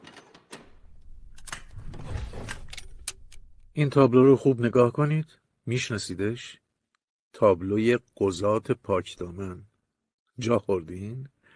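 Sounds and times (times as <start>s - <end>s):
cupboard door opening: 0.0s - 3.0s
speech: 3.8s - 6.6s, 7.3s - 9.7s, 10.4s - 11.3s.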